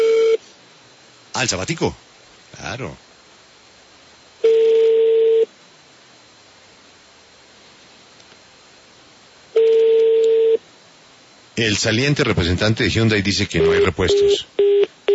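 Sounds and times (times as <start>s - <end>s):
telephone tones on a line while calling for spare parts: 0.0s - 0.4s, 4.4s - 5.5s, 9.6s - 10.6s, 13.6s - 15.1s
faint hiss: 0.0s - 15.1s
speech: 1.4s - 3.1s, 11.6s - 14.8s.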